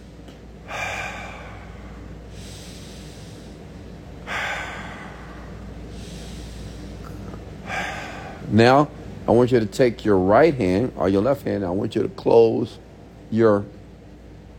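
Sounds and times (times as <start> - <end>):
deep breathing in through the nose and out through the mouth: 0.0 - 9.2
speech: 8.5 - 13.8.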